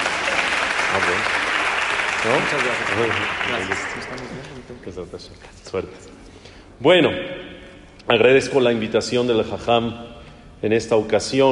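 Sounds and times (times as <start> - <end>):
crowd applauding: 0.0 - 4.8
speech: 2.2 - 11.4.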